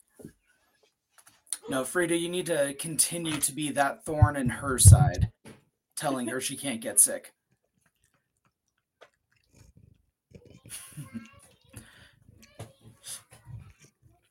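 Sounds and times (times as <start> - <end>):
speech: 1.7 - 5.4, 6.0 - 7.4
hard treats being chewed with loud crunching: 7.7 - 11.7.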